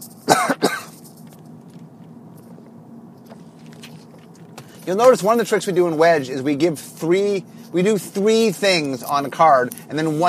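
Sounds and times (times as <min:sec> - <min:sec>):
person coughing with a rough throat-clearing quality: 0:00.2 - 0:01.0
speech: 0:04.8 - 0:10.2.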